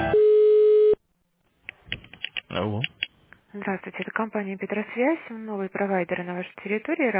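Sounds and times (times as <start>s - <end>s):
telephone line tones during a call transfer: 0.1s - 1.0s
speech: 3.6s - 7.1s.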